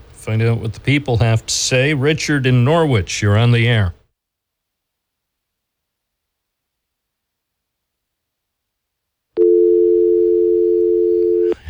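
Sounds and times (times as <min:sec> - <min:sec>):
faint noise: 0:00.0 - 0:11.6
speech: 0:00.2 - 0:04.0
loud steady telephone dial tone after a dropped phone call: 0:09.4 - 0:11.6.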